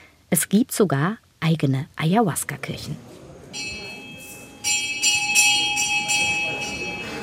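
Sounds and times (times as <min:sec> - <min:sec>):
speech: 0:00.3 - 0:03.7
bell ringing in a large hall: 0:03.6 - 0:07.2.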